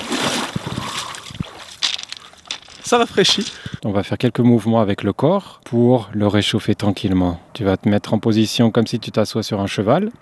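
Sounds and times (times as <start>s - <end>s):
person splashing in water: 0.0s - 3.8s
speech: 2.9s - 10.1s.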